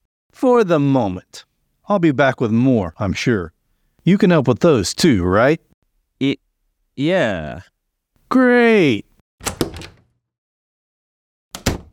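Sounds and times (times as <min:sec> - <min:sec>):
speech: 0:00.4 - 0:06.4, 0:07.0 - 0:07.7, 0:08.3 - 0:09.6
recording room door rattling open: 0:09.4 - 0:10.2, 0:11.5 - 0:11.9.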